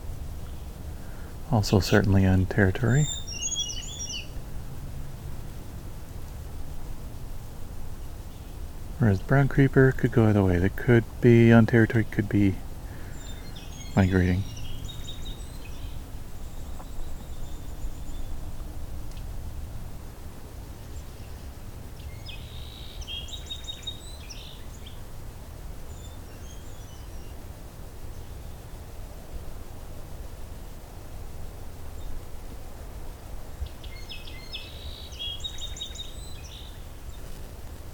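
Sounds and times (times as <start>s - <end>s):
steady hiss of wind: 0.0s - 37.9s
song sparrow singing: 0.4s - 4.4s, 10.8s - 19.3s, 20.8s - 25.1s, 25.8s - 27.4s, 33.6s - 37.4s
speech: 1.5s - 3.2s, 9.0s - 12.6s, 14.0s - 14.5s.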